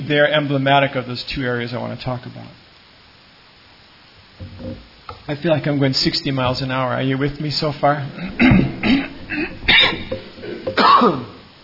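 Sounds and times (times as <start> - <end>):
speech: 0.1 - 2.6, 4.4 - 9.4, 11.0 - 11.4
person coughing: 8.2 - 11.4.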